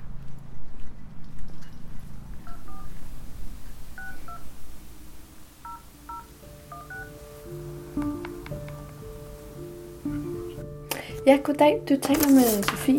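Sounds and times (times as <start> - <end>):
telephone keypad tones: 2.4 - 3.0, 4.0 - 4.5, 5.6 - 7.2
speech: 11.3 - 12.9.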